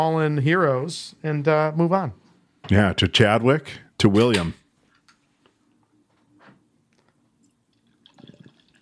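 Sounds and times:
speech: 0.0 - 4.6
Irish red beer pouring into glasses: 7.4 - 8.7.

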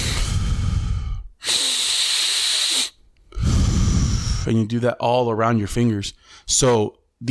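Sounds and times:
deep breaths in and out during a finger-tracing relaxation exercise: 0.0 - 4.6, 6.2 - 6.5
speech: 4.5 - 7.2.

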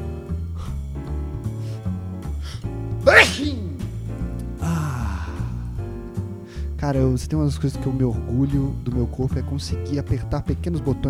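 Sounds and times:
music: 0.0 - 11.0
person sneezing: 3.1 - 3.9
speech: 6.9 - 11.0.

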